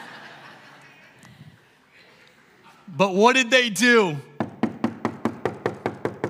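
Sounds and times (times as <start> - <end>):
laughter: 0.0 - 2.9
speech: 2.9 - 4.3
knocking on a door: 4.4 - 6.2.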